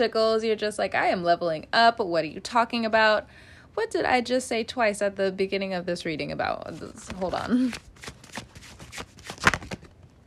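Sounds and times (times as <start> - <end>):
speech: 0.0 - 8.2
tarot cards shuffling: 6.7 - 10.0.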